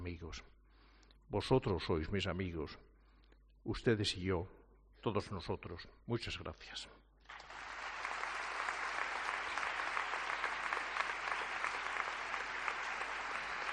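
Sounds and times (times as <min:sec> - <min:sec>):
speech: 0:00.0 - 0:00.6, 0:01.3 - 0:02.9, 0:03.6 - 0:07.5
large crowd giving a prolonged ovation to an archbishop: 0:07.3 - 0:13.7.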